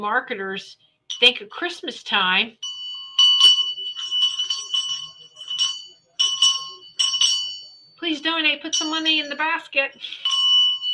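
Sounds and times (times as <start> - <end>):
speech: 0.0 - 2.6, 8.0 - 10.3
hand bell ringing: 1.1 - 1.4, 2.6 - 9.5, 10.1 - 10.9.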